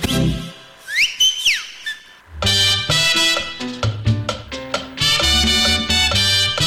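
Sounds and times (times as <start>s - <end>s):
whistle blasts: 0.6s - 3.7s, 4.5s - 6.6s
loud brassy dance music with punchy rhythmic hits: 2.3s - 6.6s.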